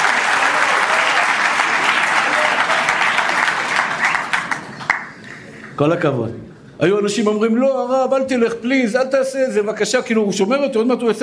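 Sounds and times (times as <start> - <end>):
crowd applauding: 0.0 - 5.8
speech: 5.8 - 11.2.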